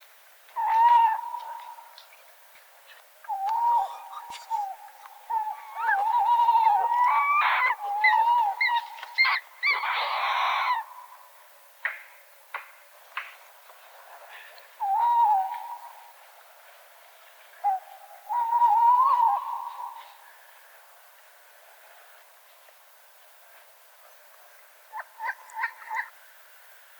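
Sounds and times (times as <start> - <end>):
tawny owl Strix aluco calling: 0.6 - 2.0, 3.3 - 11.3, 14.8 - 16.1, 17.6 - 20.2, 24.9 - 26.1.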